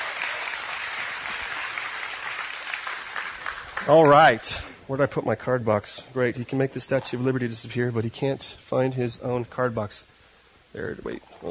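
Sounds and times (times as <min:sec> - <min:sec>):
audience applause of many hands clapping: 0:00.0 - 0:04.6
speech: 0:03.8 - 0:10.1, 0:10.7 - 0:11.4.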